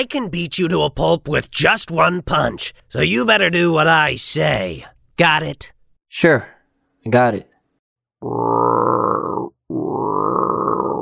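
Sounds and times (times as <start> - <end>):
speech: 0.0 - 7.5, 8.2 - 10.2
voice imitating a hungry wolf's growling stomach: 8.2 - 11.0.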